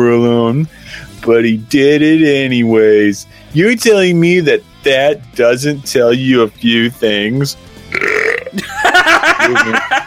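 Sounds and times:
speech: 0:00.0 - 0:10.0
loud drawn-out burp: 0:07.9 - 0:08.6
laughter: 0:08.5 - 0:10.0.

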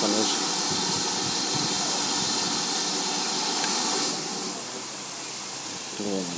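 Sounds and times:
idling steam locomotive venting steam before departure: 0:00.0 - 0:06.3
speech: 0:06.0 - 0:06.3.

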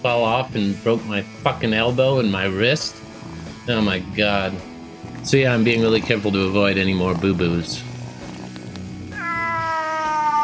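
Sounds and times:
speech: 0:00.0 - 0:03.1, 0:03.7 - 0:07.9
cat meowing: 0:09.1 - 0:10.4.

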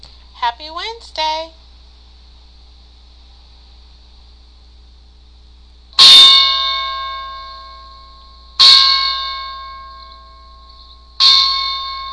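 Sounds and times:
speech: 0:00.4 - 0:01.6
loud bright bell strikes: 0:06.0 - 0:12.1.

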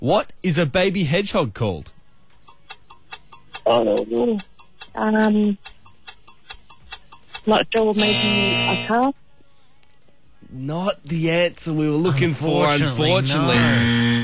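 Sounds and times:
speech: 0:00.0 - 0:02.0, 0:03.7 - 0:05.7, 0:07.4 - 0:09.2, 0:10.5 - 0:14.2
five-second countdown timer for a quiz question ticking: 0:02.4 - 0:09.1.

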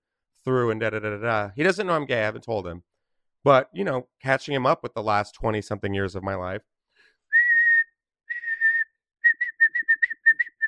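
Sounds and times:
speech: 0:00.4 - 0:06.7
person mimicking a whistle with their mouth: 0:07.4 - 0:10.6.

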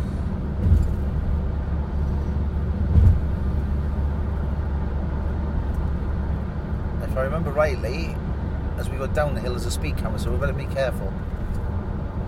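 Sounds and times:
car road and engine rumble speeding up to overtake on a dual carriageway: 0:00.0 - 0:12.2
low thumps: 0:00.6 - 0:01.3, 0:02.7 - 0:03.7
speech: 0:07.4 - 0:08.2, 0:08.8 - 0:11.4.

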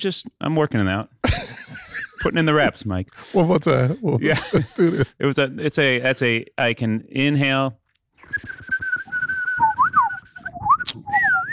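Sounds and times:
speech: 0:00.0 - 0:01.6, 0:02.2 - 0:08.8
laughter: 0:01.2 - 0:05.2
person whistling a bird call: 0:08.2 - 0:11.5.

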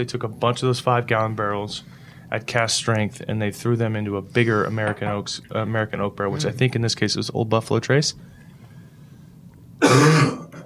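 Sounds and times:
speech: 0:00.0 - 0:08.4
rough cough: 0:09.8 - 0:10.6
throat clearing: 0:09.8 - 0:10.6.

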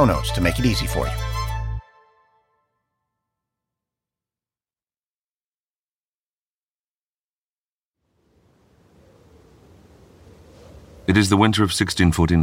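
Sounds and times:
speech: 0:00.0 - 0:01.3, 0:11.1 - 0:12.4
bitter winter wind howling along a river through a gate: 0:08.0 - 0:12.4.

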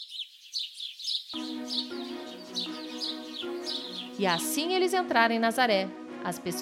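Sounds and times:
small birds chirping and singing: 0:00.0 - 0:04.8
low musical drone: 0:01.4 - 0:06.6
speech: 0:04.2 - 0:06.6.

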